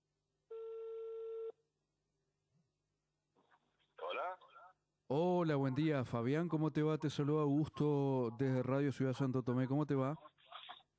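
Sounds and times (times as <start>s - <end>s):
telephone ringback tone on an outgoing call: 0.5s - 1.5s
voice answering over the phone: 4.0s - 4.7s
speech: 4.1s - 10.4s.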